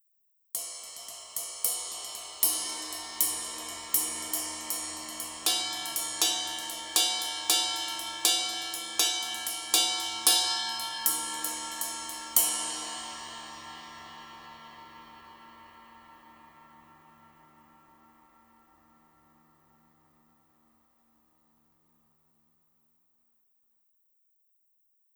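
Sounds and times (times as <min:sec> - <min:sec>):
20-inch ride cymbal: 0:00.6 - 0:18.2.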